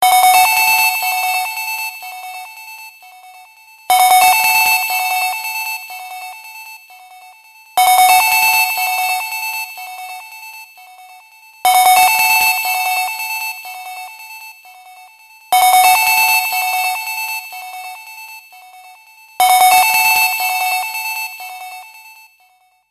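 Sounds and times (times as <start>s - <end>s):
loud Nokia 6 phone ringtone: 0.0s - 2.6s, 3.9s - 6.5s, 7.8s - 10.5s, 11.7s - 14.2s, 15.5s - 18.1s, 19.4s - 22.3s.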